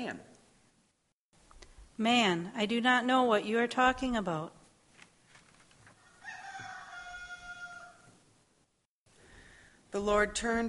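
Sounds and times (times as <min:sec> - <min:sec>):
speech: 0:00.0 - 0:00.3, 0:02.0 - 0:04.6, 0:09.9 - 0:10.6
rooster crowing: 0:06.0 - 0:08.2.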